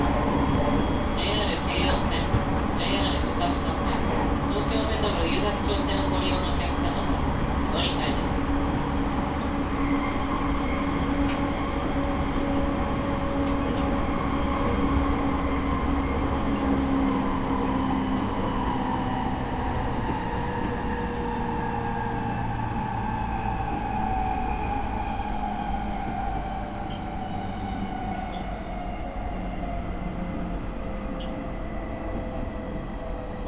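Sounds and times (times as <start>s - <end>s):
interior rumble of a moving Rinkai Line train: 0.0s - 33.4s.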